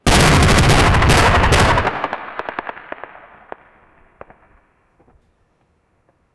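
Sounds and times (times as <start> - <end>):
grenade detonating with a loud bang in war: 0.0 - 4.5.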